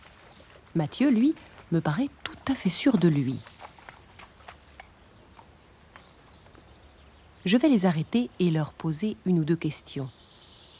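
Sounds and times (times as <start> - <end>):
pony hooves clip-clopping at a walk while ridden by children: 0.0 - 7.2
soft outdoor hiss: 0.0 - 10.7
speech: 0.8 - 3.5, 7.4 - 10.2.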